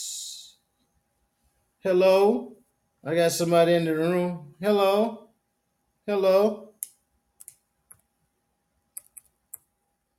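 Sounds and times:
speech: 1.8s - 5.2s, 6.1s - 6.7s
faint keyboard clicks from typing: 9.0s - 9.7s.

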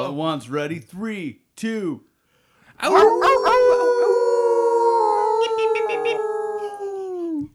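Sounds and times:
speech: 0.0s - 2.1s, 2.8s - 3.9s
several human voices howling together like wolves: 2.8s - 7.5s.

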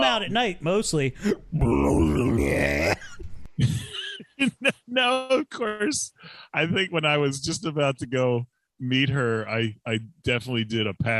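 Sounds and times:
speech: 0.1s - 3.0s, 4.6s - 11.1s
loud croaking belch: 1.3s - 3.2s.

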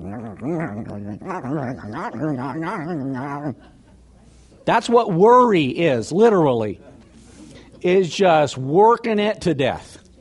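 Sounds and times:
person imitating a dog worrying a bone with growly whining vocal noises: 0.0s - 3.6s
speech: 0.4s - 3.8s, 4.7s - 6.9s, 7.8s - 10.0s.

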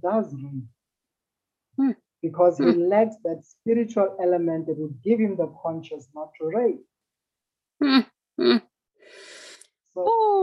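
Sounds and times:
speech: 0.0s - 0.8s, 1.8s - 6.9s, 7.8s - 9.3s, 10.0s - 10.4s
short voiced sounds: 7.8s - 8.7s
deep breath drawn in by a speaker mid-talk: 9.0s - 9.7s.

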